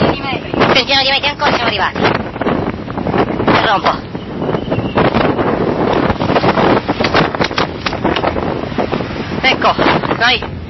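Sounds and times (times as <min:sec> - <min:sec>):
strong storm wind in a blizzard-like gale roaring across the microphone: 0:00.0 - 0:10.6
speech: 0:00.8 - 0:02.2, 0:03.7 - 0:04.1, 0:09.6 - 0:10.6.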